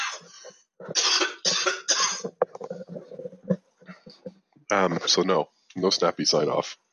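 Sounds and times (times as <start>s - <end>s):
person coughing harshly: 0.0s - 2.8s
throat clearing: 0.0s - 2.9s
speech: 4.7s - 6.8s.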